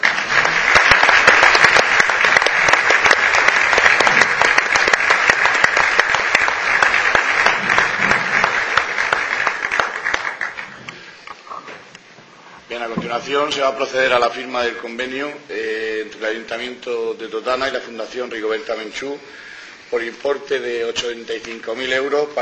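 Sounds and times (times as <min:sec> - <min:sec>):
crowd applauding: 0:00.0 - 0:11.1
speech: 0:13.2 - 0:22.4.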